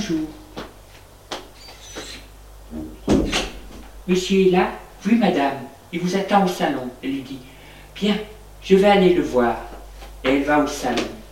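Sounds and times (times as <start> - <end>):
speech: 0.1 - 0.4, 4.1 - 11.2
door opening: 1.6 - 3.8.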